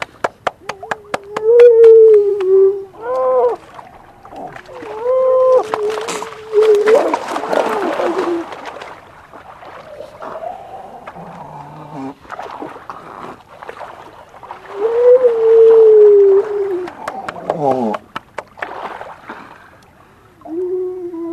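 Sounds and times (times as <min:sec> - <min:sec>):
grey seal moaning: 0:00.6 - 0:08.6, 0:09.8 - 0:12.2, 0:14.6 - 0:18.0.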